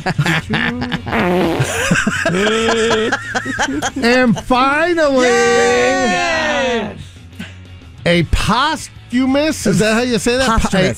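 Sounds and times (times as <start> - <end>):
laughter: 0.0 - 6.2
speech: 0.0 - 7.1, 8.0 - 10.9
comedic fart sound effect: 1.1 - 1.9.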